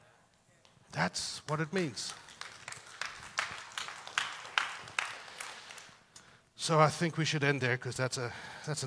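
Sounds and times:
audience clapping in a steady rhythm: 0.6s - 6.2s
speech: 1.0s - 2.3s, 6.6s - 8.8s.

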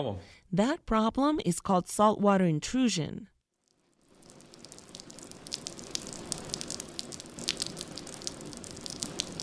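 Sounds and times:
speech: 0.0s - 3.3s
sharp rain drips striking surfaces: 3.7s - 9.4s
rain shower pattering in South Florida: 4.0s - 9.4s.

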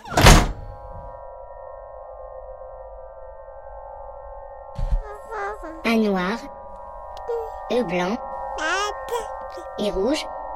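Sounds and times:
door closing nearby with a solid thunk: 0.0s - 1.1s
speech: 5.6s - 6.6s, 7.3s - 8.2s, 9.1s - 10.4s.

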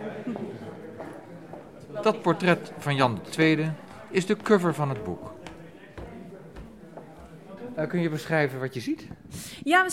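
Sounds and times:
steady murmur: 0.0s - 9.9s
speech: 2.0s - 5.4s, 7.8s - 9.9s
footsteps of people climbing a staircase: 5.4s - 7.4s.

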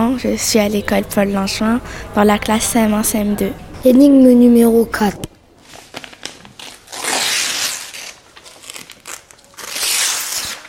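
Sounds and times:
speech: 0.1s - 5.3s
damaged sheet of paper being torn: 5.9s - 10.6s.

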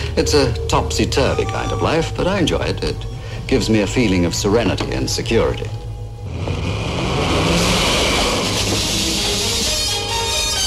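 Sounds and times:
speech: 0.2s - 5.8s
car engine revving hard as the car accelerates: 6.1s - 10.5s.

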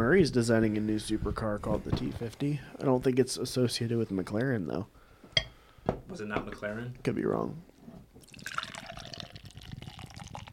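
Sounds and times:
speech: 0.2s - 5.0s, 6.1s - 8.3s
liquid pouring into a glass: 8.2s - 10.5s.

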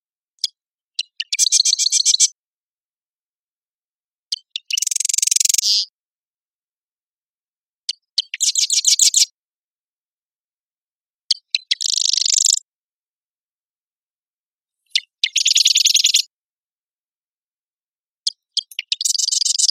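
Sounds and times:
marsh wren Cistothorus palustris singing: 0.4s - 2.4s, 4.3s - 5.9s, 7.8s - 9.4s, 11.3s - 12.7s, 14.8s - 16.3s, 18.2s - 19.7s.

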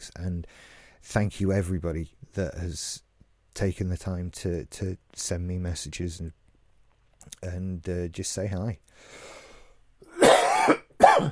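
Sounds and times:
speech: 0.0s - 3.0s, 3.6s - 6.4s, 7.2s - 9.4s
person coughing with a raspy hack: 10.0s - 11.2s.

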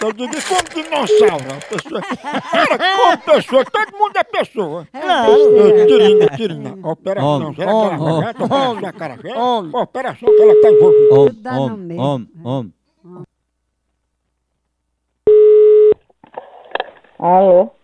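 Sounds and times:
laughter: 0.0s - 12.7s
speech: 0.0s - 13.2s, 17.2s - 17.8s
telephone ringing tone on a call line: 1.0s - 1.7s, 5.2s - 6.3s, 10.3s - 11.3s, 15.3s - 16.0s.

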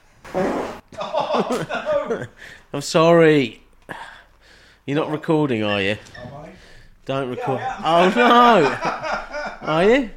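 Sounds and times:
loud sputtering fart: 0.3s - 0.9s
laughter: 0.9s - 2.6s, 7.4s - 10.1s
speech: 1.4s - 4.0s, 4.8s - 6.4s, 7.1s - 10.1s.

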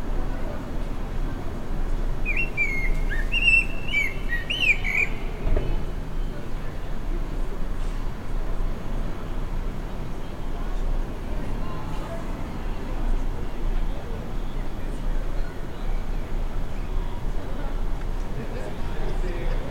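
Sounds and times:
steady low background noise: 0.0s - 19.6s
blackbird singing: 2.2s - 5.4s.

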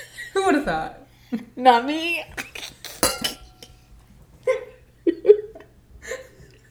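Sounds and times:
speech: 0.4s - 2.4s
glasses clinking together in a toast: 2.9s - 4.0s.

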